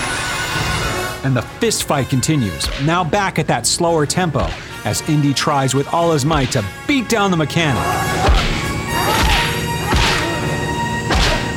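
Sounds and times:
sustained orchestral texture: 0.0s - 11.5s
speech: 1.2s - 8.6s.

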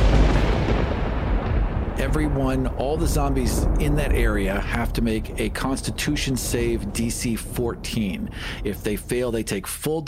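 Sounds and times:
loud thunderclap explosion with roaring rumble: 0.0s - 9.8s
speech: 2.0s - 10.0s.

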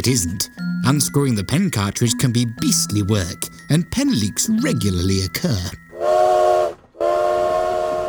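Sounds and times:
speech: 0.0s - 5.8s
steam train whistle: 6.0s - 8.0s.

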